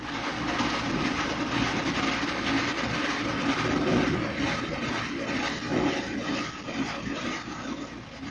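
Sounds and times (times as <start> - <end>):
destroyer mechanical rumble and churning hum on underwater listening gear: 0.0 - 8.2.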